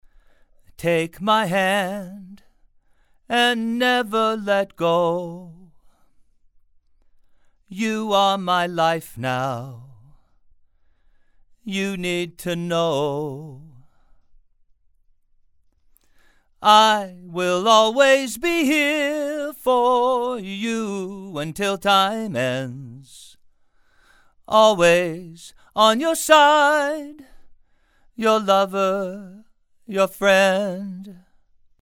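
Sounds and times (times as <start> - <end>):
man singing: 0.7 - 2.5, 3.3 - 5.8, 7.7 - 10.2, 11.6 - 13.9, 16.6 - 23.4, 24.5 - 27.4, 28.2 - 31.2.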